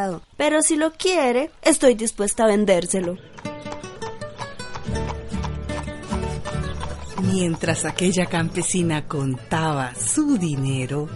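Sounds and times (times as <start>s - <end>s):
speech: 0.0s - 3.5s, 7.3s - 11.1s
ridden horse trotting with hooves clip-clopping: 2.2s - 11.1s
low musical backdrop: 3.0s - 11.1s.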